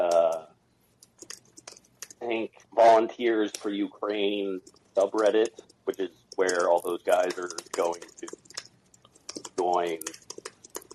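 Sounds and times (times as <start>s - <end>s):
computer keyboard typing: 0.0s - 0.4s, 1.0s - 2.2s, 4.5s - 10.9s
speech: 2.3s - 8.4s, 9.6s - 10.2s.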